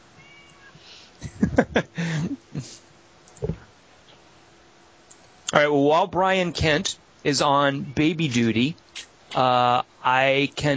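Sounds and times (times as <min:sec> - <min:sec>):
faint hum: 0:00.0 - 0:10.7
single short cat meow: 0:00.2 - 0:00.8
laughter: 0:01.2 - 0:02.4
speech: 0:01.3 - 0:03.5, 0:05.6 - 0:10.7.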